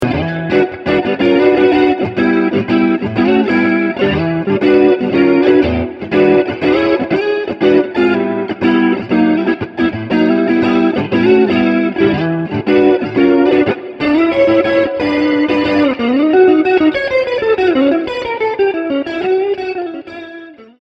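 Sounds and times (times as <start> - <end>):
blues guitar through Vibroverb amplifier and Vibratone rotary speaker: 0.0 - 20.8.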